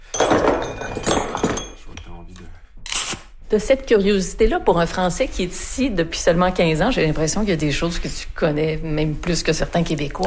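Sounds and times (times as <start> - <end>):
metal hammer being pulled out and set down, clinking: 0.0 - 2.1
speech: 3.5 - 10.2.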